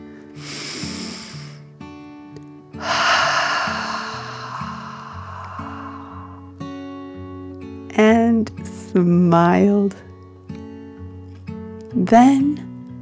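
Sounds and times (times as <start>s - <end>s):
calm musical backing: 0.0s - 13.0s
dragon breathing deeply with a rough snorting hiss: 2.8s - 6.7s
speech: 8.9s - 10.1s, 12.0s - 12.6s.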